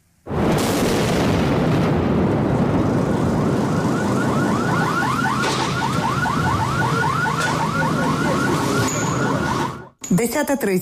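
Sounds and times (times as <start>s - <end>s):
explosions during shelling of apartment buildings: 0.2s - 9.7s
dense roaring rumble after an explosion: 0.3s - 9.8s
car alarm wailing in a fast repeating pattern: 3.3s - 10.0s
speech: 10.2s - 10.8s.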